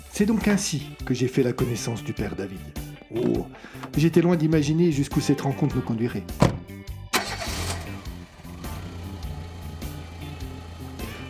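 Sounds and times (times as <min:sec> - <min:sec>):
speech: 0:00.2 - 0:06.7
car engine starting and running: 0:06.6 - 0:11.2.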